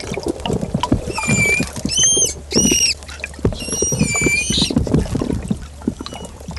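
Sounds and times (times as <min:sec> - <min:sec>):
low hum: 0:00.0 - 0:06.5
water splashing: 0:00.0 - 0:06.5
frightened manatee squeals: 0:01.0 - 0:04.8, 0:06.0 - 0:06.5.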